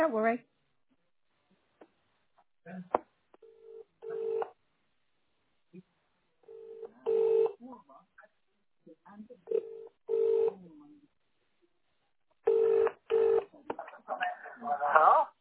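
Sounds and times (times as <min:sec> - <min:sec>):
speech: 0:00.0 - 0:00.5, 0:02.6 - 0:03.1
telephone line electronic ring-back tone: 0:03.4 - 0:04.5, 0:06.5 - 0:07.6, 0:09.5 - 0:10.5, 0:12.5 - 0:13.5.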